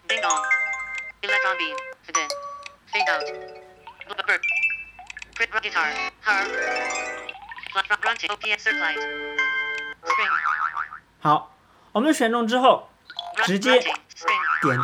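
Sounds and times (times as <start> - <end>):
mobile phone electronic ringtone previews with melodic chimes: 0.1 - 1.6, 2.2 - 5.1, 6.3 - 7.6
speech: 1.3 - 3.6, 4.3 - 4.6, 5.4 - 7.1, 7.7 - 9.3, 10.1 - 10.5, 11.2 - 14.8.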